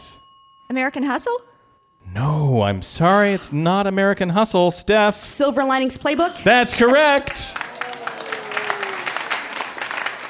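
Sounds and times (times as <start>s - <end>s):
speech: 0.7s - 1.5s, 2.1s - 7.6s
studio audience applause and cheering after a correct guess: 7.3s - 10.2s.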